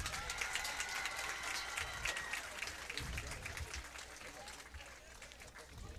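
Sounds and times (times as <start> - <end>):
crowd applauding senior band members: 0.0 - 5.8.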